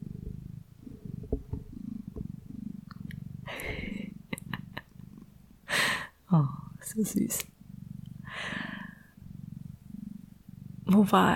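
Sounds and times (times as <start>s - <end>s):
cat purring: 0.0s - 11.3s
speech: 6.3s - 7.5s, 11.0s - 11.3s
rustling breathy burst: 8.2s - 9.2s.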